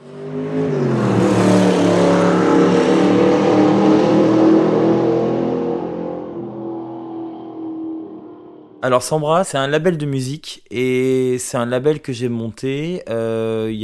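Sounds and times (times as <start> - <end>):
1980 Alpine A310 sports car engine revving: 0.0 - 8.5
speech: 8.8 - 13.8.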